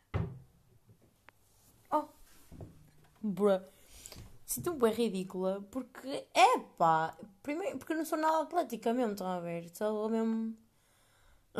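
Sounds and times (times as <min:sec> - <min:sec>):
door banging shut with a heavy thud: 0:00.0 - 0:00.5
speech: 0:03.2 - 0:03.8, 0:04.5 - 0:10.6.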